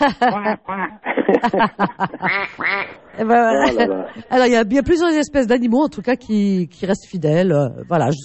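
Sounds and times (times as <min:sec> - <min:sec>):
laughter: 0:00.0 - 0:04.2
speech: 0:00.0 - 0:08.2
duck quacking: 0:02.3 - 0:03.0.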